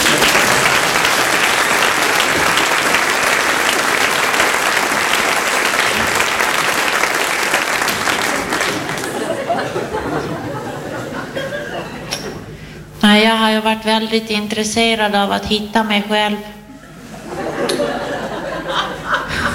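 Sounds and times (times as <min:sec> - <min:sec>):
laughter: 0:00.0 - 0:06.9, 0:07.5 - 0:12.5, 0:16.7 - 0:19.5
audience applause: 0:00.0 - 0:11.2
speech: 0:14.0 - 0:16.5.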